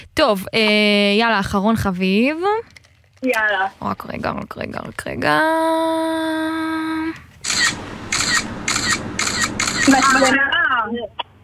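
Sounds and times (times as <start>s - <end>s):
speech: 0.2s - 7.8s, 9.8s - 11.2s
loud camera shutter clicks of a screenshot: 7.4s - 10.4s
steady electronic tone: 7.4s - 10.5s.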